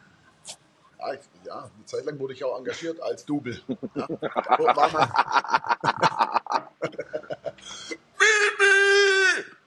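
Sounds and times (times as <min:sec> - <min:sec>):
speech: 0:01.0 - 0:06.1
laughter: 0:03.5 - 0:07.6
person imitating the scream of a handball coach: 0:08.2 - 0:09.6.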